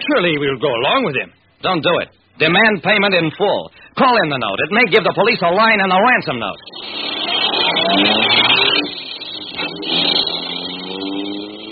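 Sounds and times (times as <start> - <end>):
speech: 0.1 - 9.1
car engine revving and pulling away: 6.6 - 11.7.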